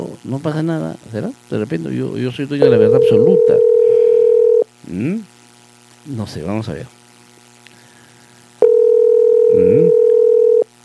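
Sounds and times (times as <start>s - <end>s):
speech: 0.3s - 3.7s, 4.9s - 5.3s, 6.0s - 7.0s
telephone dial tone while placing a call: 2.9s - 4.6s, 8.6s - 10.6s.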